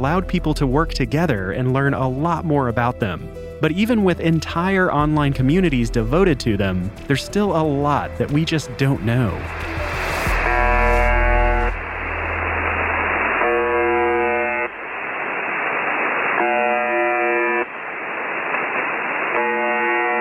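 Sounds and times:
speech: 0:00.0 - 0:09.7
hiss of radio static: 0:07.7 - 0:20.1
harsh continuous electronic buzz from shortwave radio station: 0:09.5 - 0:18.4, 0:19.2 - 0:20.1.

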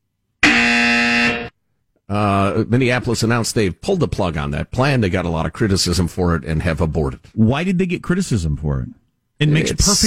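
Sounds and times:
loud harsh buzzer: 0:00.4 - 0:01.6
speech: 0:02.1 - 0:10.0.

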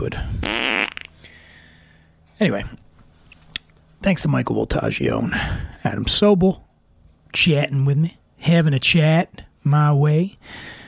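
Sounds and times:
speech: 0:00.0 - 0:00.6, 0:02.4 - 0:02.8, 0:04.0 - 0:06.6, 0:07.3 - 0:10.8
loud buzzy fart: 0:00.4 - 0:01.1.

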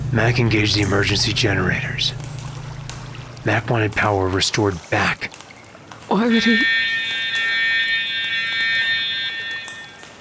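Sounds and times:
speech: 0:00.1 - 0:02.3, 0:03.4 - 0:05.4, 0:06.1 - 0:06.9
high-pitched electronic facility alarm tone: 0:06.1 - 0:10.1.

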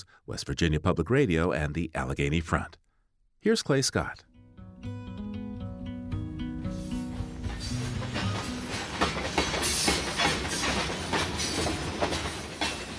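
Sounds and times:
speech: 0:00.0 - 0:02.8, 0:03.4 - 0:05.0
long freight coal train rolling past on rails: 0:06.5 - 0:12.9
freight train wheels clickety-clacking over track joints: 0:07.4 - 0:12.9.

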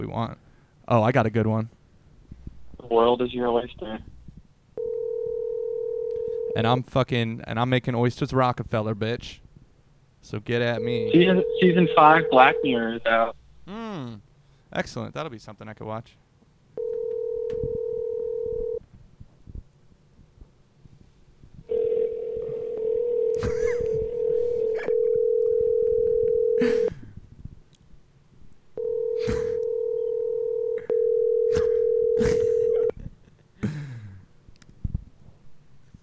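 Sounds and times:
speech: 0:00.0 - 0:01.8, 0:02.8 - 0:04.1, 0:06.6 - 0:09.4, 0:10.2 - 0:16.2
steady telephone dial tone: 0:04.8 - 0:06.6, 0:10.8 - 0:13.0, 0:16.8 - 0:18.8, 0:21.7 - 0:26.8, 0:28.8 - 0:32.9.

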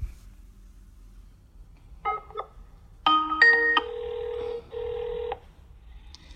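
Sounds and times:
steady telephone ringing tone: 0:03.1 - 0:05.4.

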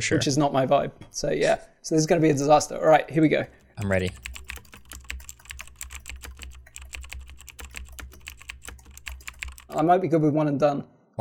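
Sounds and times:
speech: 0:00.0 - 0:04.3, 0:09.8 - 0:11.2
typing on a mechanical keyboard: 0:03.5 - 0:09.9.

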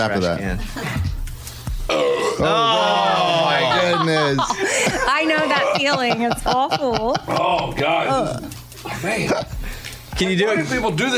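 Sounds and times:
speech: 0:00.0 - 0:01.2, 0:01.9 - 0:09.5, 0:10.2 - 0:11.1
loud burp: 0:01.9 - 0:02.7
laughter: 0:02.5 - 0:07.8.

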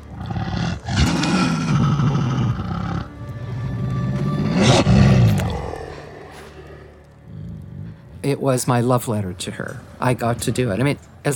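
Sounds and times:
dog howling and growling layered as a wolf pack: 0:00.0 - 0:03.2, 0:04.2 - 0:08.2
speech: 0:08.3 - 0:11.3.

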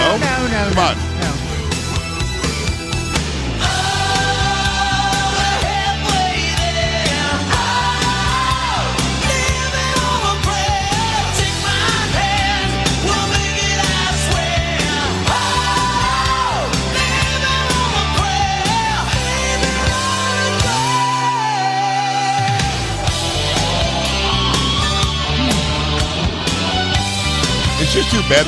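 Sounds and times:
loud rock song with drumbeat, electric guitars and sung vocals: 0:00.0 - 0:28.4
host singing along to rock song: 0:03.6 - 0:25.4.

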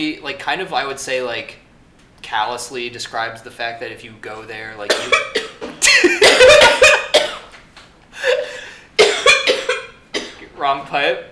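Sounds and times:
speech: 0:00.0 - 0:01.6, 0:02.2 - 0:06.6, 0:10.7 - 0:11.3
harsh coughing fit after choking: 0:04.9 - 0:07.6, 0:08.2 - 0:10.6
laughter: 0:05.8 - 0:07.1
strained breaths: 0:08.1 - 0:09.0.

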